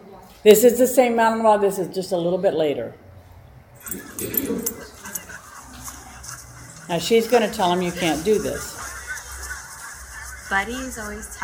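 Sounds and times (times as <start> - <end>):
speech: 0.4 - 3.0, 6.9 - 8.8, 10.5 - 11.4
faint whiny dog noises: 3.8 - 5.4
dog growling at another dog: 3.8 - 6.2.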